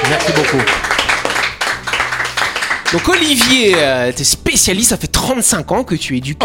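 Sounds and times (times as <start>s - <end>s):
small audience clapping: 0.0s - 4.2s
speech: 0.1s - 0.9s, 2.9s - 6.4s.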